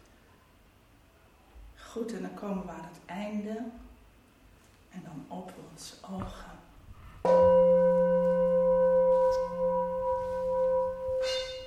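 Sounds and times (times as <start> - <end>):
speech: 2.0 - 3.8, 5.0 - 6.6
gong strike: 7.2 - 11.6.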